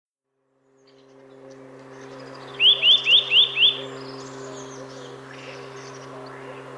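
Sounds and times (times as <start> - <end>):
steady low hum: 0.5 - 6.7
Eurasian nuthatch Sitta europaea whistled calls: 2.0 - 6.1.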